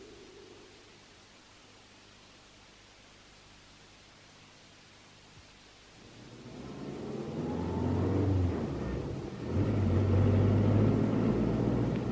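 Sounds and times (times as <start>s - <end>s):
car engine revving and accelerating: 6.0s - 12.1s.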